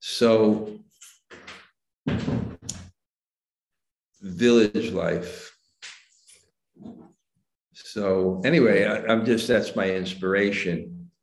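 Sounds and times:
speech: 0.2 - 0.8, 4.3 - 5.5, 7.9 - 11.0
door closing thud: 1.3 - 2.9.

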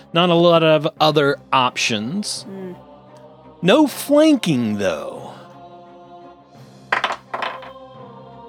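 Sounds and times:
speech: 0.1 - 2.9, 3.6 - 5.3
dice rolling on a tabletop for a tabletop game attack: 6.9 - 7.8.

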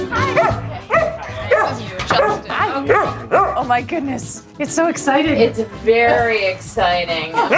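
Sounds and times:
dog barking and yipping: 0.1 - 3.6, 7.4 - 7.5
speech: 3.7 - 7.5.

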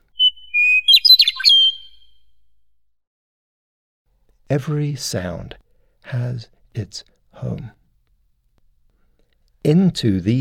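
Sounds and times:
meadowlark whistled song: 0.0 - 2.5
speech: 4.5 - 7.8, 9.6 - 10.3.

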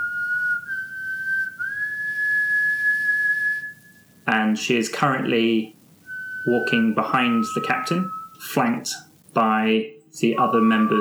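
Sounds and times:
person whistling a slow simple tune: 0.0 - 4.0, 6.1 - 8.8, 10.4 - 10.9
speech: 4.4 - 5.8, 6.4 - 10.9.

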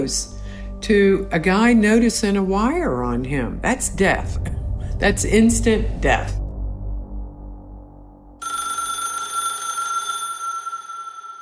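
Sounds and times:
speech: 0.0 - 6.4
low rumble: 0.2 - 8.4
telephone ringing with bright bell-like trill: 8.4 - 11.3.

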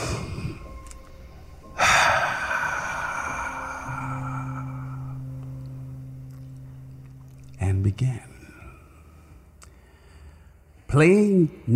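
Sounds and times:
low steady tone: 0.0 - 11.7
deep breath: 1.6 - 5.6, 8.5 - 10.8
speech: 7.8 - 8.3, 10.9 - 11.7.

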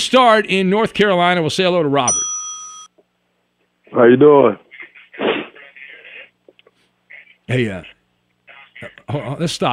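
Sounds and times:
speech: 0.0 - 2.3, 3.9 - 4.6, 7.5 - 8.0, 8.8 - 9.7
person sneezing over a telephone line: 5.2 - 5.6.

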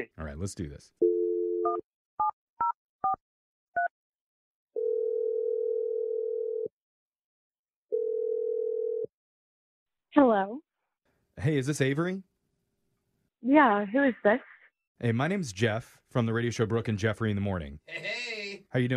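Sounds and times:
speech: 0.0 - 1.0, 10.2 - 10.7, 11.4 - 12.3, 13.4 - 18.9
telephone dial tone: 1.0 - 1.8, 4.8 - 6.7, 7.9 - 9.1
telephone ringing: 4.8 - 6.7, 7.9 - 9.1.

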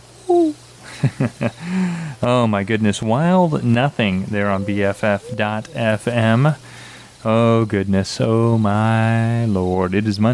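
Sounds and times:
quiet hum: 0.0 - 10.3
speech: 1.0 - 10.3
owl hooting: 3.2 - 6.8.

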